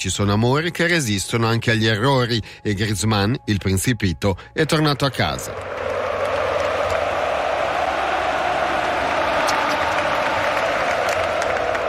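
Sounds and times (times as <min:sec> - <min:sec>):
speech: 0:00.0 - 0:05.8
stadium crowd of football fans applauding a returning player: 0:04.6 - 0:11.8
sharp claps: 0:05.1 - 0:11.8.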